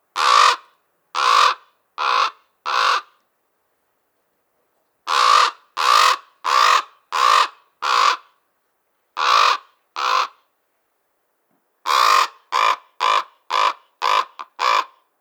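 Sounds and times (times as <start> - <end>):
Common Raven calls: 0.2 - 3.2, 5.1 - 8.3, 9.2 - 10.4, 11.8 - 15.0.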